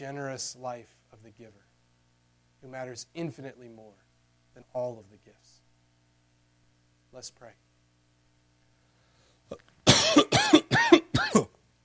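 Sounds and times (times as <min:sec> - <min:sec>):
speech: 0:00.0 - 0:01.7, 0:02.6 - 0:05.6, 0:07.1 - 0:07.6
harsh raspy coughs: 0:09.8 - 0:11.6.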